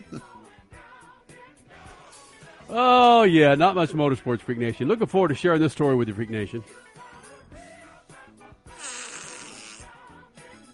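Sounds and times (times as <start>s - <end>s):
speech: 2.7s - 6.9s
loud drawn-out fart: 8.7s - 10.0s.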